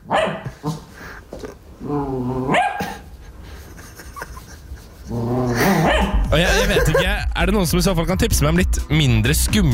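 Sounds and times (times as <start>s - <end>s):
small poodle barking in high-pitched yappy bursts: 0.0s - 0.6s, 2.5s - 3.0s, 5.8s - 6.2s
laughter: 3.5s - 7.4s
speech: 7.4s - 9.7s.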